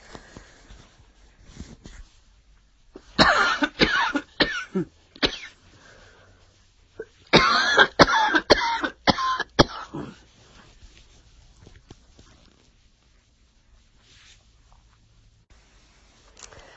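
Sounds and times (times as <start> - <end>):
person coughing: 3.2 - 5.6, 7.0 - 10.2.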